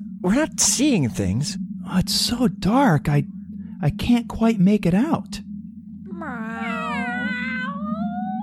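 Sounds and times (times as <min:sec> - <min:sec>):
steady low hum: 0:00.0 - 0:08.4
speech: 0:00.2 - 0:05.5
cat meowing: 0:06.1 - 0:08.4.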